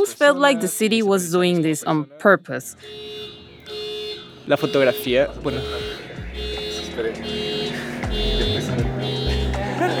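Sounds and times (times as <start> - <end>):
speech: 0.0 - 3.8, 4.5 - 6.0
loud street traffic noise: 0.0 - 9.9
car horns honking on a busy street: 2.7 - 9.9.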